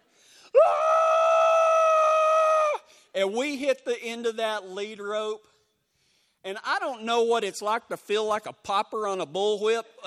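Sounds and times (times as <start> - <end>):
person letting out a high-pitched scream: 0.6 - 2.9
speech: 3.2 - 5.5, 6.4 - 10.0.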